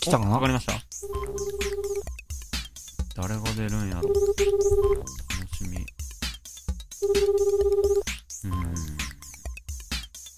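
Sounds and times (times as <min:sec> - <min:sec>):
speech: 0:00.0 - 0:01.3, 0:03.2 - 0:05.8, 0:07.0 - 0:08.8
outgoing phone ringback tone: 0:01.0 - 0:02.1, 0:04.0 - 0:05.1, 0:07.0 - 0:08.0.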